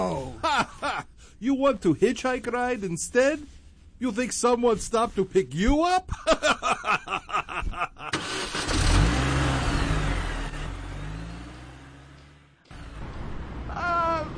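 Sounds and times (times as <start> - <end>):
laughter: 0.2 - 1.1, 6.1 - 8.2
speech: 1.4 - 6.7
car engine while driving: 8.1 - 14.3.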